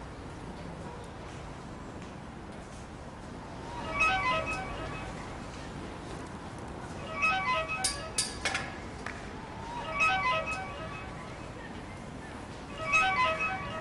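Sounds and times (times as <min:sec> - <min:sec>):
mobile phone ringtone melodic phrase: 0:03.8 - 0:05.2, 0:07.0 - 0:08.2, 0:09.7 - 0:11.5, 0:12.7 - 0:13.7.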